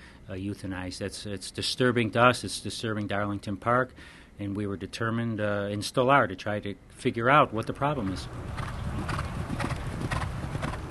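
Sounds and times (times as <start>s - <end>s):
speech: 0.3s - 9.1s
horses' hooves clip-clopping at a racetrack during early-morning workouts: 8.1s - 10.8s.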